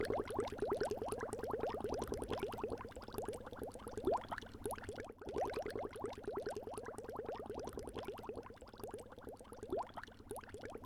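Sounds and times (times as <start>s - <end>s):
bubbles: 0.0s - 10.8s.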